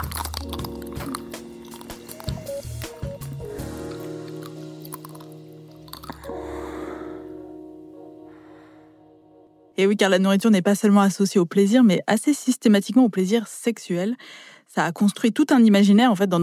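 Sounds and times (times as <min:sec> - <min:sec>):
crunchy bites into a chocolate-coated ice cream bar: 0:00.0 - 0:06.4
wet squishy chewing: 0:00.0 - 0:06.4
speech: 0:09.8 - 0:16.4.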